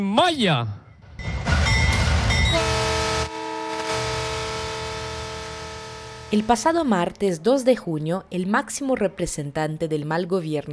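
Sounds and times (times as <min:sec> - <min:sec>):
speech: 0:00.0 - 0:00.8, 0:06.3 - 0:10.7
train horn sounding a start signal for a railway in Mexico: 0:01.5 - 0:06.5.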